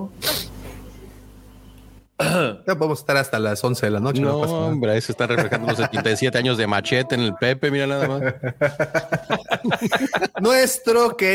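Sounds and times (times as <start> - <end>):
person clearing throat: 2.2 - 2.6
person coughing: 2.2 - 2.6
speech: 2.3 - 11.3
laughter: 5.0 - 10.7.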